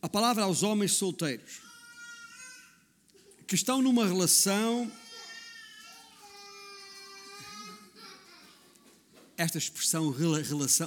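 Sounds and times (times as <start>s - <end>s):
speech: 0.0s - 1.7s, 3.5s - 5.0s, 9.4s - 10.8s
baby wailing in a room: 1.6s - 3.4s, 4.9s - 8.8s.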